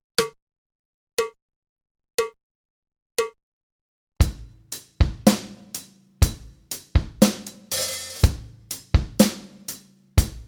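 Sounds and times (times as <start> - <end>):
drum kit practice: 4.2 - 10.4.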